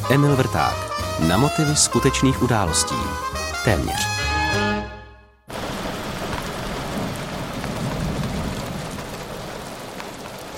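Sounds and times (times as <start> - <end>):
heavy rain: 0.0 - 3.4, 5.5 - 10.5
musical tone: 0.0 - 5.5
speech: 0.1 - 4.6.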